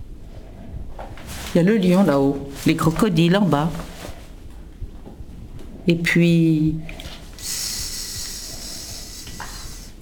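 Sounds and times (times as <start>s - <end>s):
speech: 1.5s - 3.9s, 5.9s - 7.0s
voice imitating the hiss of a small snake: 7.4s - 10.0s.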